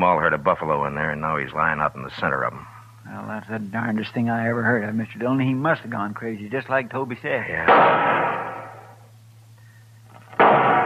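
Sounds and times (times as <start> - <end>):
speech: 0.0 - 8.4
Sharps rifle shots fired as a signal for help: 7.7 - 8.9, 10.4 - 10.8.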